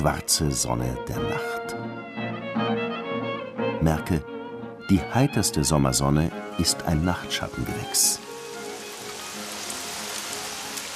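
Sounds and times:
speech: 0:00.0 - 0:02.8, 0:03.8 - 0:08.3
summer rain rustling on leafy bushes and trees: 0:06.4 - 0:10.9.

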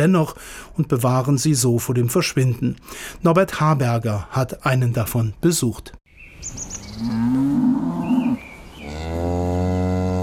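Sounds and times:
speech: 0:00.0 - 0:07.7
cows mooing on a mountain pasture: 0:07.0 - 0:10.2.

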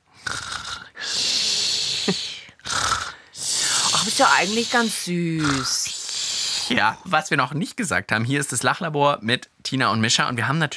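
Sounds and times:
person imitating a child's snoring with rasping wheezy breaths: 0:00.1 - 0:07.1
speech: 0:02.1 - 0:02.3, 0:04.2 - 0:06.0, 0:06.7 - 0:10.7.

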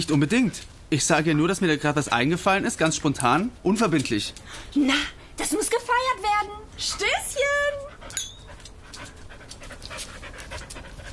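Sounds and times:
speech: 0:00.0 - 0:08.2
dancing dog panting: 0:06.8 - 0:11.1.

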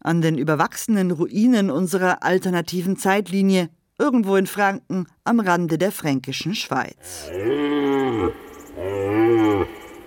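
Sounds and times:
speech: 0:00.0 - 0:08.9
aurochs or European bison lowing while grazing: 0:07.0 - 0:10.0.

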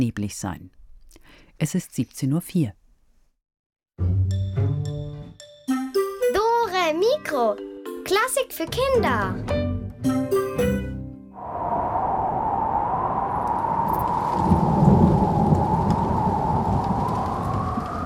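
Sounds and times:
speech: 0:00.0 - 0:00.8, 0:01.6 - 0:02.8, 0:06.9 - 0:09.6
music: 0:04.0 - 0:11.4
low rumble of thunder: 0:11.4 - 0:18.0
heavy rain in a stormy downpour: 0:13.7 - 0:18.0.

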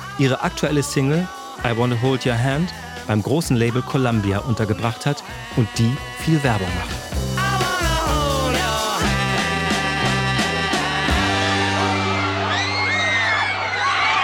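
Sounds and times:
upbeat music with a steady pounding beat: 0:00.0 - 0:12.3
speech: 0:00.2 - 0:07.3
huge crowd of teenagers screaming and shrieking: 0:08.1 - 0:14.2.

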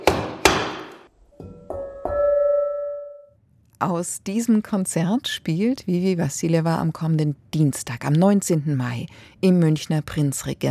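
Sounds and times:
hammer striking metal to tune its pitch: 0:00.0 - 0:03.0
clear metallic tone ringing and sustaining: 0:01.3 - 0:03.4
speech: 0:03.8 - 0:10.6.

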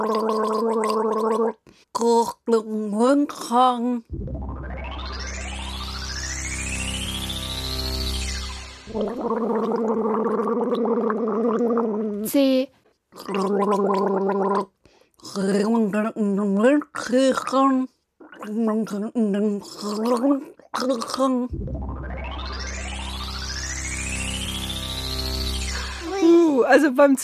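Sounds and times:
person gargling in the throat while speaking: 0:00.0 - 0:02.5, 0:09.0 - 0:12.3, 0:13.2 - 0:14.7, 0:15.3 - 0:16.0, 0:16.6 - 0:21.5
speech: 0:00.0 - 0:04.5, 0:08.9 - 0:22.6, 0:26.3 - 0:27.2
long rising and falling electronic swoop: 0:04.1 - 0:09.8, 0:21.5 - 0:26.6
low hum: 0:04.1 - 0:10.3, 0:21.5 - 0:26.6.

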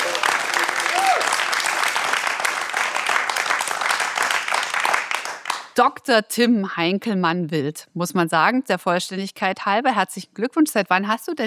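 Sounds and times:
live studio audience cheering: 0:00.0 - 0:05.5
live studio audience applause: 0:00.0 - 0:05.7
speech: 0:05.8 - 0:11.4.

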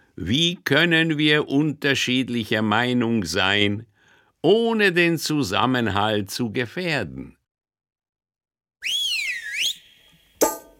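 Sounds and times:
speech: 0:00.2 - 0:07.4
bright whistled radio jingle: 0:08.8 - 0:10.7.

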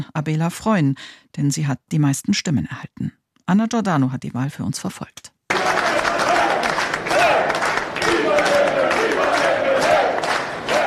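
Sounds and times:
speech: 0:00.0 - 0:05.3
party delegates cheering and chanting slogans at a vote-counting centre: 0:05.5 - 0:10.8
scattered clapping: 0:05.5 - 0:10.8.

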